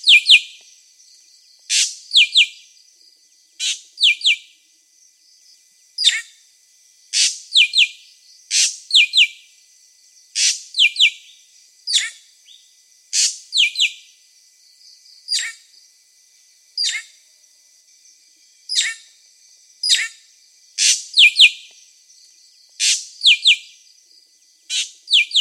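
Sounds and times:
drongo calling: 0.0s - 0.8s, 1.7s - 2.6s, 3.6s - 4.6s, 6.0s - 6.4s, 7.2s - 9.5s, 10.4s - 12.6s, 13.2s - 14.1s, 15.2s - 15.7s, 16.8s - 17.2s, 18.6s - 19.2s, 19.8s - 21.9s, 22.7s - 23.9s, 24.7s - 25.3s
steady high-pitched background hiss: 0.0s - 25.3s.

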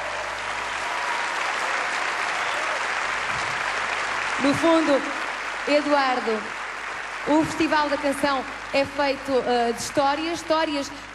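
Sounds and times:
audience applause at a song contest event: 0.0s - 8.8s
speech: 4.4s - 6.6s, 7.2s - 11.1s.

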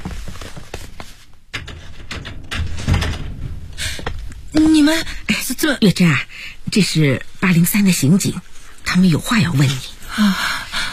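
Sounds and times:
rattling and handling noise: 0.0s - 5.3s
door being opened: 1.5s - 5.0s
loud knock-like thud: 1.6s - 5.3s
speech: 4.6s - 10.6s.

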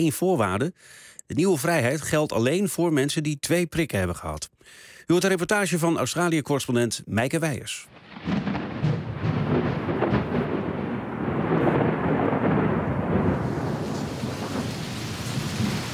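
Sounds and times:
speech: 0.0s - 8.5s
deep rumbling thunder in Sydney: 7.9s - 15.9s
steady heavy rain in Sydney: 7.9s - 15.9s.

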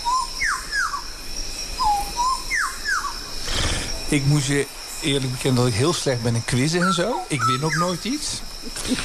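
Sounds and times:
bird calls from Papua New Guinea, clear whistled notes: 0.0s - 1.0s, 1.8s - 3.8s, 6.7s - 8.2s
steady high insect-like hiss: 0.0s - 9.0s
speech: 4.1s - 9.0s.

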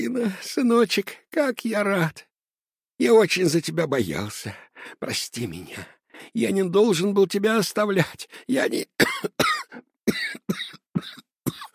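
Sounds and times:
speech: 0.0s - 2.3s, 3.0s - 9.4s
man with a slight cold coughing: 9.0s - 11.7s.

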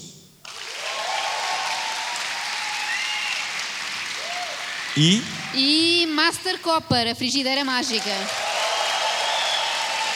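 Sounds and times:
audience applause from a live crowd in a hall: 0.5s - 5.6s, 7.8s - 10.1s
speech: 5.0s - 8.5s.

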